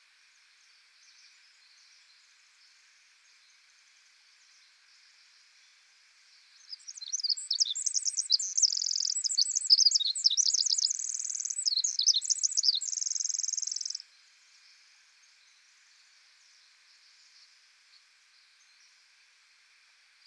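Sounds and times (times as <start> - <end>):
faint hiss: 0.0 - 20.2
Pacific Wren singing: 6.7 - 14.0
bird chirps: 6.7 - 14.0.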